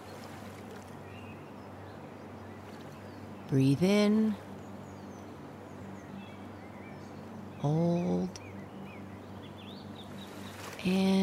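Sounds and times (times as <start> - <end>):
soft steady water lapping: 0.0 - 1.0, 9.9 - 11.2
low hum: 0.0 - 11.2
speech: 3.5 - 4.4, 7.6 - 8.4, 10.8 - 11.2.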